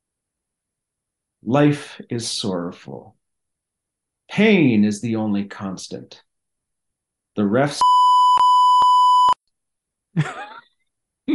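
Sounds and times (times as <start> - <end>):
speech: 1.4 - 3.2, 4.3 - 6.3, 7.4 - 8.0, 10.2 - 10.4
loud electronic censor bleep tone from a beep button: 7.8 - 9.4.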